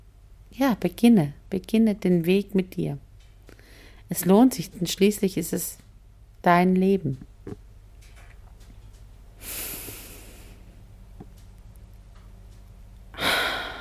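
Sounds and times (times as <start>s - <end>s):
faint hum: 0.0s - 13.7s
speech: 0.5s - 3.0s, 4.1s - 5.8s, 6.4s - 7.6s
deep inhalation: 9.4s - 10.7s, 13.2s - 13.7s.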